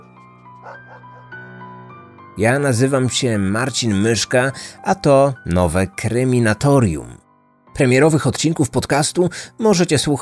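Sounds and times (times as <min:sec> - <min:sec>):
speech: 0:00.6 - 0:01.4, 0:02.4 - 0:07.2, 0:07.8 - 0:10.2
police tracking dog barking: 0:00.6 - 0:01.6.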